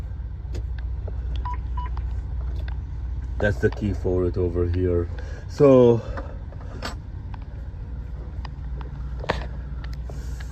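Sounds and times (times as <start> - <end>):
truck engine idling: 0.0 - 10.5
truck idle shutdown warning electronic beeps: 1.4 - 2.0
speech: 3.4 - 6.3.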